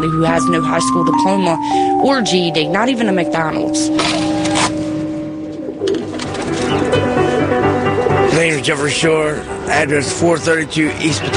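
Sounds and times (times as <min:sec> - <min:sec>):
speech: 0:00.0 - 0:04.8, 0:08.6 - 0:11.3
pigeons cooing in low throaty burbles: 0:03.5 - 0:08.3.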